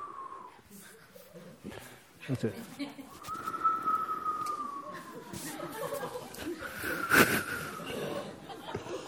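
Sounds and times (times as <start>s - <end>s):
people chattering: 0.0s - 9.0s
speech: 1.7s - 3.0s
voice imitating wind whistling past high dungeon windows: 3.2s - 5.6s, 6.6s - 8.2s
people laughing: 4.5s - 9.0s.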